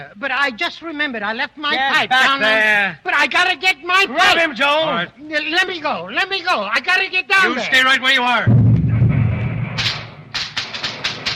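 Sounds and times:
speech: 0:00.0 - 0:08.6
low rumbling: 0:08.5 - 0:10.3
fireworks going off: 0:08.5 - 0:11.3.

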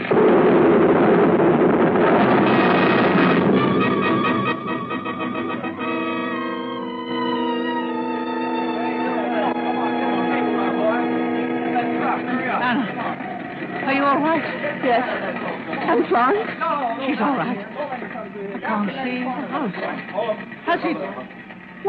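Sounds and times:
bomb bursting overhead in a wartime raid, striking a house: 0:00.0 - 0:06.5
sustained ringing tones: 0:02.3 - 0:21.8
speech: 0:18.8 - 0:21.8.

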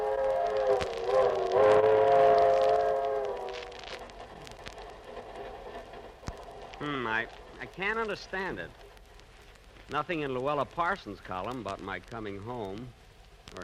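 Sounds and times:
passenger train whistle wailing: 0:00.0 - 0:04.0
passenger train from New York to California rumbling: 0:00.0 - 0:13.6
sharp clicks from the rails: 0:00.0 - 0:13.6
speech: 0:07.3 - 0:08.8, 0:09.9 - 0:13.6.

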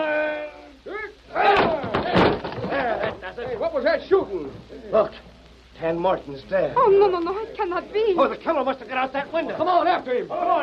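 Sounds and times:
people shouting: 0:00.0 - 0:03.2, 0:10.2 - 0:10.6
door being smashed in by several people: 0:01.5 - 0:03.2
speech: 0:03.9 - 0:10.6.

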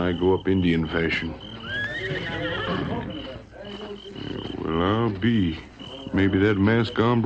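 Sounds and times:
speech: 0:00.0 - 0:07.2
horse neighing with a long wavering whinny: 0:00.8 - 0:06.1.

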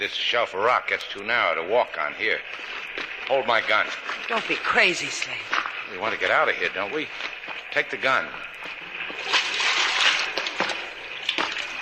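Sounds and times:
speech: 0:00.0 - 0:08.5
water splashing in a shallow underground river: 0:02.0 - 0:11.8.

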